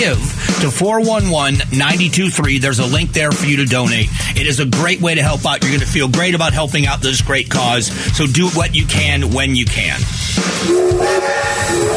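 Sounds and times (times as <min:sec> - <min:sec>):
speech: 0:00.0 - 0:11.9
train whistle: 0:10.6 - 0:11.9.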